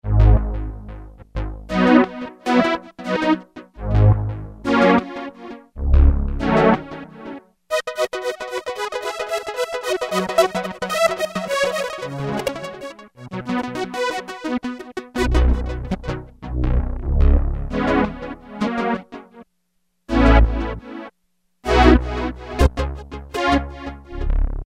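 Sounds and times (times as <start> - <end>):
Roland MKS-70 synthesizer patch: 0.0 - 19.3, 21.6 - 24.6.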